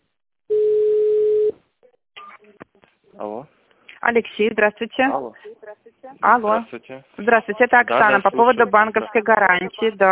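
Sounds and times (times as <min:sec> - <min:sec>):
telephone tone on an automated phone line: 0:00.5 - 0:01.6
speech: 0:03.2 - 0:05.5, 0:06.1 - 0:10.1.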